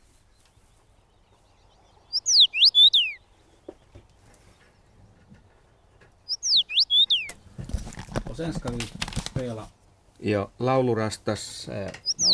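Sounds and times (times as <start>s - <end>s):
common rosefinch whistled song phrase: 1.4s - 3.8s, 6.2s - 7.4s, 12.0s - 12.3s
speech: 8.4s - 12.3s.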